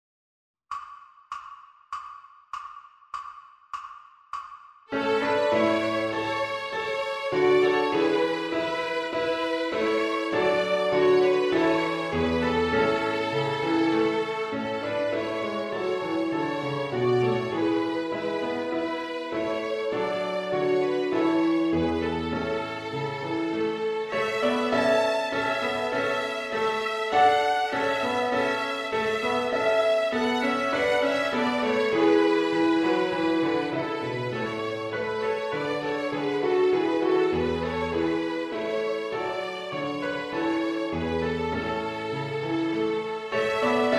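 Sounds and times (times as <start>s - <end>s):
piano in a backing track: 4.9s - 43.9s
violin in a backing track: 4.9s - 43.9s.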